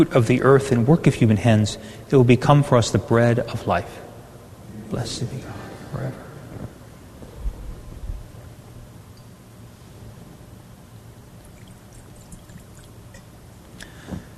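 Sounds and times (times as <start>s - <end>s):
speech: 0.0s - 4.1s, 4.9s - 6.2s
low steady hum: 0.0s - 14.3s
faint soft clink: 9.1s - 9.4s
water trickling into wine in a chalice during Mass: 11.3s - 14.0s.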